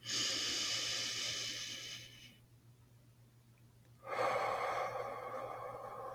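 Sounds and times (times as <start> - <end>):
deep breathing in and out through the mouth: 0.0 - 2.4, 4.0 - 6.1
faint steady low hum: 0.0 - 6.1.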